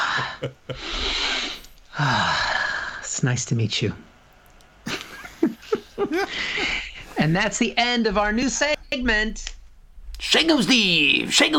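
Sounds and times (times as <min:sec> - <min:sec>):
laughter: 0:00.0 - 0:01.2, 0:04.8 - 0:07.3
speech: 0:00.4 - 0:01.1, 0:02.0 - 0:02.5, 0:03.2 - 0:04.1, 0:07.2 - 0:09.5, 0:10.2 - 0:11.5
nasal sniffing at a hand after a handshake: 0:00.7 - 0:01.8.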